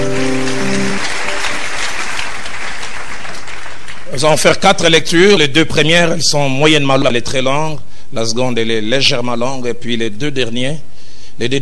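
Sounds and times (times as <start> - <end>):
audience applause at a religious service: 0.0 - 4.2
speech: 4.2 - 11.5.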